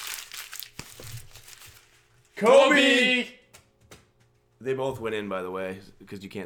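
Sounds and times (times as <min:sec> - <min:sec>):
paper being crumpled into a ball: 0:00.0 - 0:02.3
speech: 0:02.4 - 0:03.4, 0:04.6 - 0:06.4.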